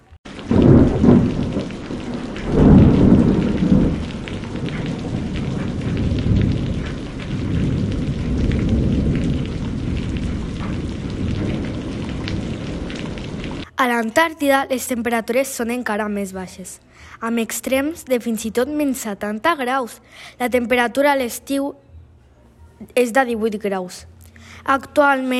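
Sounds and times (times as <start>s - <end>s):
deep thunder rumbling: 0.2s - 13.7s
heavy steady downpour: 0.2s - 13.7s
speech: 14.0s - 21.8s, 22.8s - 25.3s.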